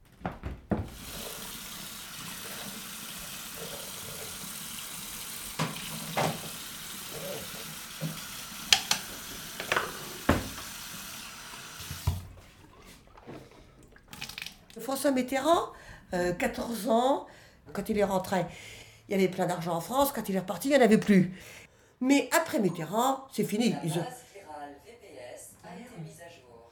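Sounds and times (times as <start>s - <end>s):
tap water running at a sink during teeth brushing: 0.7s - 15.7s
speech: 15.0s - 24.2s.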